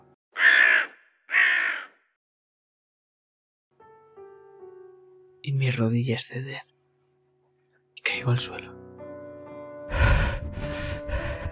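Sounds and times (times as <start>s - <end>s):
crow cawing: 0.3s - 2.2s
speech: 5.4s - 6.7s, 8.2s - 8.8s.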